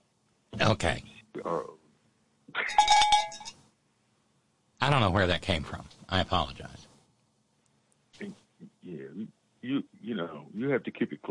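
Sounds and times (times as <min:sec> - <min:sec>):
speech: 0:00.6 - 0:01.8, 0:04.8 - 0:06.9, 0:08.2 - 0:11.3
bell ringing with bright metallic clanging strikes: 0:02.7 - 0:03.5.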